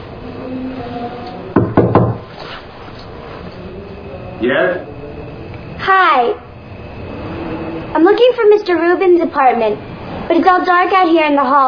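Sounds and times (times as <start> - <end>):
faint steady hum: 0.0 - 11.6
knocking on a door: 1.6 - 2.2
speech: 4.4 - 4.9, 5.9 - 6.4, 8.0 - 11.6.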